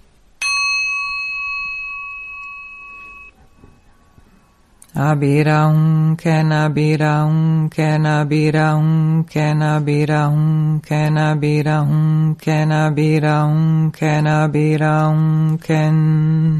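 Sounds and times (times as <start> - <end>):
single bell struck and ringing: 0.4 - 4.7
person chanting: 4.8 - 16.5.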